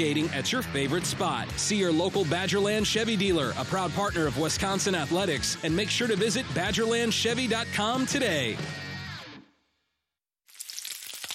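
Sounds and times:
speech: 0.0 - 8.9
bacon sizzling in a pan: 10.5 - 11.3.

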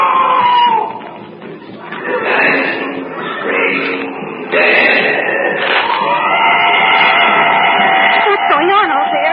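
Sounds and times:
wounded animal screaming: 0.0 - 1.0, 2.0 - 9.3.

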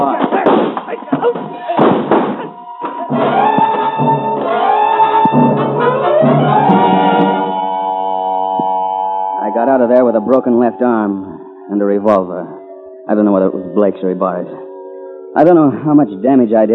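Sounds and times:
bodies crashing to the floor in a struggle: 0.0 - 4.4
sustained tonal drone: 2.3 - 16.7
speech: 10.3 - 12.4, 13.1 - 14.6, 15.4 - 16.7.

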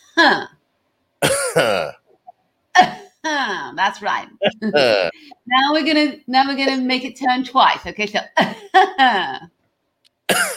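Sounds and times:
speech: 0.2 - 0.5, 3.8 - 9.5, 10.3 - 10.5
person coughing and clearing throat: 1.2 - 2.0, 4.4 - 5.1, 10.3 - 10.5.

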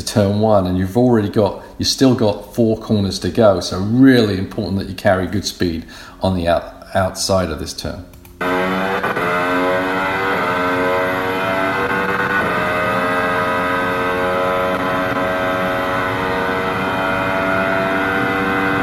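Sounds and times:
speech: 0.1 - 8.1
Formula One car engine at full speed on the Baku street circuit: 8.4 - 18.8.

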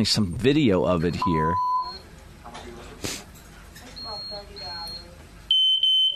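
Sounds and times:
speech: 0.0 - 1.7
fire alarm beeping: 1.2 - 2.0, 4.0 - 6.1.

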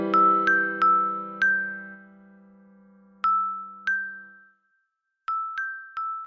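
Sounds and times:
high silvery bells ringing: 0.1 - 2.2, 3.3 - 6.2.

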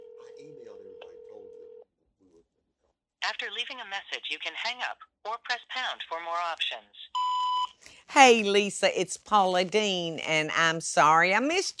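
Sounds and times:
phone ringing tone from a call being placed: 0.0 - 1.8
speech: 3.3 - 7.3, 8.1 - 11.7.

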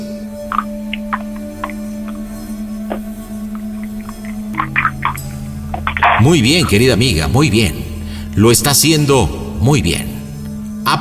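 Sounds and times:
feet splashing water in a bucket: 0.5 - 6.8
speech: 6.2 - 10.1.

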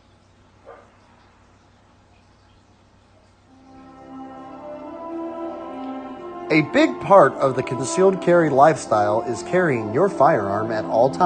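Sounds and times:
dog barking sharply and whinily: 0.6 - 1.0
speech: 6.5 - 11.2.

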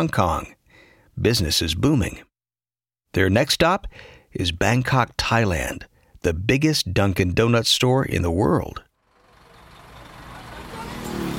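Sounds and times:
speech: 0.0 - 0.6, 1.2 - 2.3, 3.1 - 8.9
motorcycles whizzing past on a busy street in Bangkok: 9.0 - 11.3
road hiss of busy street traffic: 9.1 - 11.3.

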